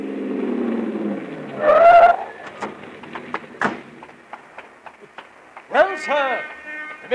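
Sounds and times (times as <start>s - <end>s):
car engine rumbling: 0.0s - 7.1s
car tires squealing while braking and turning: 0.3s - 7.1s
clunks and taps as car comes to rest: 2.4s - 6.7s
speech: 6.0s - 6.5s.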